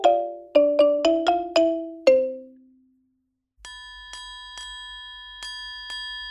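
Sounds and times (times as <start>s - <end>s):
bell ringing: 0.0s - 2.5s.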